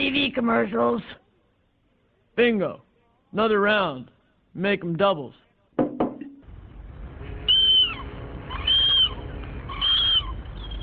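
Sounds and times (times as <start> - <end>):
speech: 0.2 - 1.2, 2.4 - 5.4
seagulls calling: 7.4 - 10.8.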